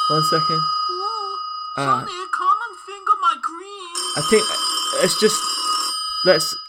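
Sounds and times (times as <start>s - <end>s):
phone ringing with an electronic tone: 0.0s - 6.6s
speech: 0.1s - 1.1s, 1.8s - 3.1s, 4.2s - 5.6s, 6.2s - 6.6s.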